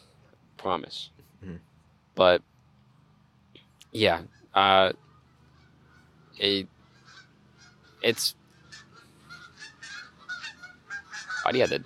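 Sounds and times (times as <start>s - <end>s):
speech: 0.6s - 2.5s, 3.9s - 5.0s, 6.4s - 6.7s, 8.0s - 8.4s, 11.4s - 11.8s
geese honking: 4.0s - 11.8s.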